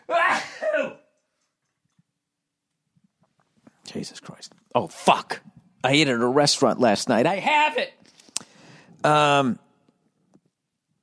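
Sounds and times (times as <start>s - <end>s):
loud sneeze: 0.2s - 1.0s
speech: 3.9s - 8.0s, 9.0s - 9.6s.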